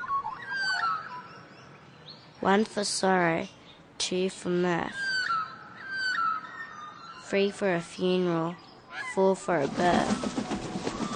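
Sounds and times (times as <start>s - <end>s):
Australian magpie warbling fluting whistles: 0.0s - 1.8s, 4.6s - 10.2s
faint hum: 0.0s - 11.1s
speech: 2.4s - 5.1s, 7.3s - 10.3s.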